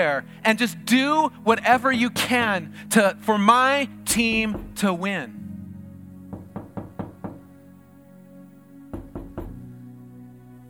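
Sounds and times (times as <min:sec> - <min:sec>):
speech: 0:00.0 - 0:05.4
firm knocking on a door: 0:04.2 - 0:04.8, 0:06.3 - 0:07.4, 0:08.9 - 0:09.6.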